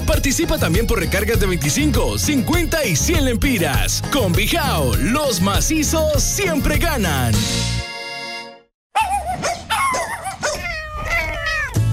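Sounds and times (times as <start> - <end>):
speech: 0.1 - 7.8
dog barking in loud bursts: 9.0 - 11.8
cat meowing: 9.0 - 11.9.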